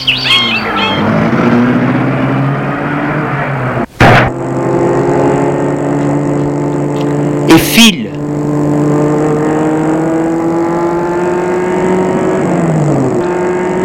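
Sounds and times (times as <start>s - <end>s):
birds chirping: 0.0s - 1.3s
car engine roaring as the car drives away at speed: 0.0s - 13.8s.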